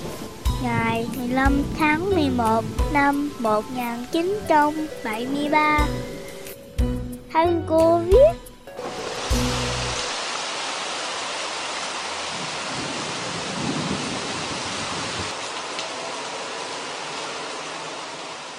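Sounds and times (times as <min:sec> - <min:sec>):
steady rain pouring down: 0:00.0 - 0:06.5, 0:08.7 - 0:18.5
speech: 0:00.6 - 0:06.1, 0:07.4 - 0:08.5.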